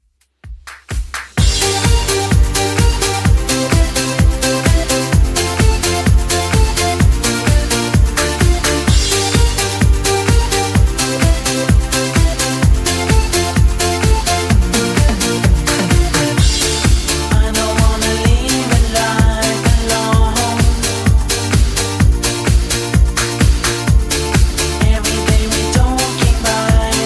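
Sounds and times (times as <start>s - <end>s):
80s drum loop: 0.1s - 7.7s, 8.5s - 26.9s.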